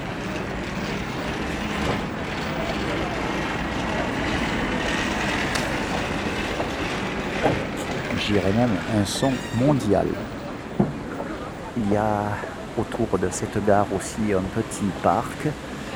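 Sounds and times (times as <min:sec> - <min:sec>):
wheeled suitcases rolling around a train station: 0:00.0 - 0:11.8
speech: 0:08.3 - 0:10.4, 0:11.9 - 0:15.7.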